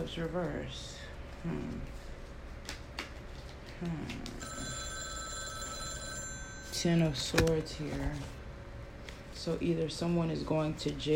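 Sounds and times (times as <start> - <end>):
speech: 0.0 - 2.0, 3.8 - 4.8, 6.8 - 8.4, 9.4 - 11.1
telephone ringing with bright electronic trill: 4.4 - 7.4.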